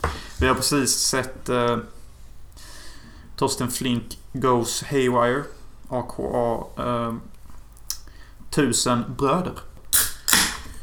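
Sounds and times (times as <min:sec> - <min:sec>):
speech: 0:00.4 - 0:02.0, 0:03.4 - 0:07.3, 0:08.5 - 0:09.7
can of Sofiero 7.5 beer being opened: 0:09.9 - 0:10.7.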